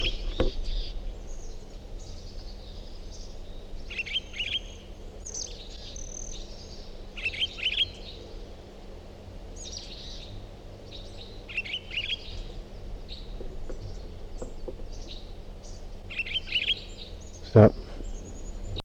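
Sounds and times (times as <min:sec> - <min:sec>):
bird singing short high chirping phrases: 0:00.0 - 0:08.6, 0:09.5 - 0:18.8
hiss: 0:00.0 - 0:18.8
steady low hum: 0:00.0 - 0:18.8
speech: 0:17.6 - 0:17.8.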